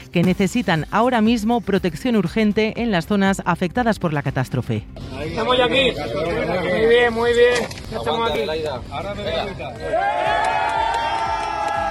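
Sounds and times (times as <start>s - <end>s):
speech: 0.1s - 10.8s
excited overlapping shouts and voices of rescue workers: 9.7s - 11.9s
Spanish military emergency rescue workers cheering and whooping after pulling survivors from earthquake rubble: 9.8s - 11.9s.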